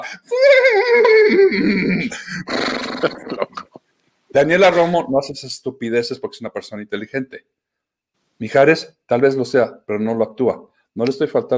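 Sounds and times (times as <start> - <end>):
speech: 0.0 - 3.2, 4.4 - 7.6, 8.4 - 11.5
person's voice mimicking a horse's neigh: 0.0 - 3.7
rough sputtering snorts from a person's voice: 2.4 - 3.2.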